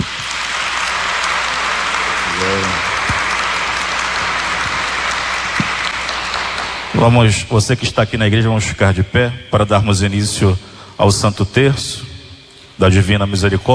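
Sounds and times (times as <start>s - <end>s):
church audience applauding in a large church: 0.0s - 7.9s
low murmur of a voice: 2.2s - 2.9s
speech: 7.0s - 12.1s, 12.8s - 13.7s.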